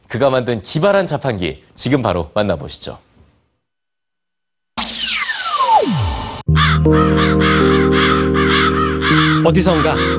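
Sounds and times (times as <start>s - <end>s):
speech: 0.1s - 3.1s, 6.8s - 7.1s, 9.4s - 10.1s
falling electronic sweep: 4.8s - 6.5s
crow cawing: 6.6s - 10.1s.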